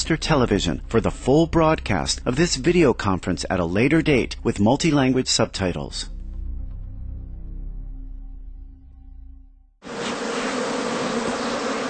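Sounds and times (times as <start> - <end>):
speech: 0.0 - 6.1
bee buzzing: 9.8 - 11.8.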